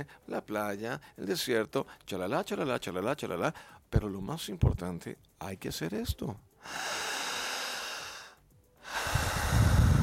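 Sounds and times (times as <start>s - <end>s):
speech: 0.0s - 7.1s
deep forceful breathing exercise: 6.6s - 10.0s.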